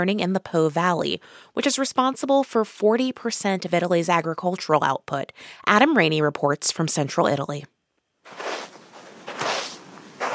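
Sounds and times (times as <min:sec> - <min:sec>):
speech: 0:00.0 - 0:08.4
footsteps crunching on dry sand in a dry riverbed: 0:08.3 - 0:10.3.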